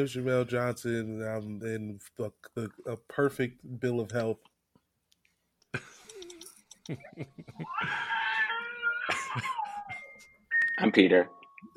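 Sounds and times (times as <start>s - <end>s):
speech: 0.0s - 4.5s, 6.9s - 8.2s, 9.3s - 9.6s, 10.8s - 11.7s
baby screaming and wailing: 7.6s - 10.0s.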